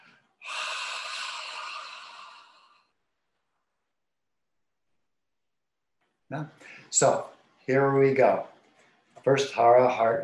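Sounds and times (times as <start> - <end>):
slow audible exhale in a breathing exercise: 0.0 - 3.0
speech: 6.3 - 8.5, 9.2 - 10.2.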